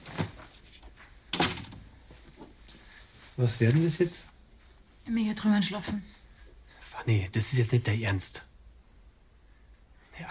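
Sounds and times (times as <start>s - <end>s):
bedroom door opening: 1.3s - 1.9s
speech: 3.4s - 4.3s, 5.1s - 6.2s, 7.0s - 8.5s.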